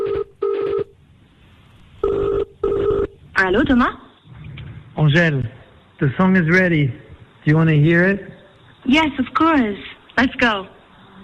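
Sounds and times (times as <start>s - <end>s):
telephone line ringing before answer: 0.0s - 1.0s, 2.0s - 3.2s
speech: 3.5s - 4.0s, 5.0s - 10.8s.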